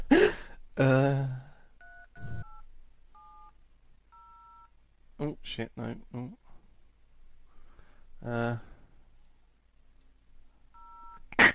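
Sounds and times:
speech: 0.8 - 1.4, 5.2 - 6.4, 8.2 - 8.7
phone keypad tones while dialing a number: 1.8 - 2.6, 3.2 - 3.5, 4.1 - 4.7, 10.8 - 11.2.

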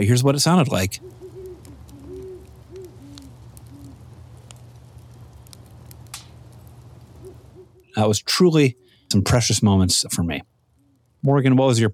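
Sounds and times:
speech: 0.0 - 1.2, 8.0 - 10.5, 11.2 - 11.9
faint crackles or clicks: 0.0 - 11.9
outdoor noise: 0.0 - 11.9
owl hooting outdoors at night: 1.0 - 4.1, 7.2 - 8.0.

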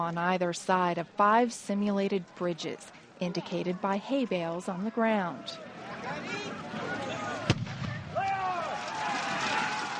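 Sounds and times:
speech: 0.0 - 6.9
noisy outdoor crowd shouting: 5.4 - 9.9
cannon blast: 7.5 - 8.2.

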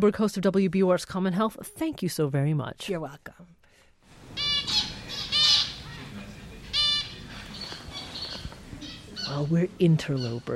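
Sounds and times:
speech: 0.0 - 3.5, 9.3 - 10.5
finches and canary squawking and chirping: 4.4 - 10.5.

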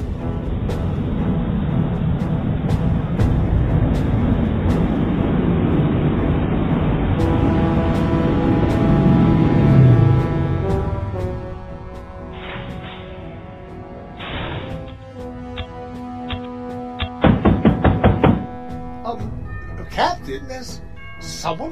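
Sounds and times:
steady droning musical background: 0.0 - 21.6
sharp knocking on a door: 17.0 - 18.5.

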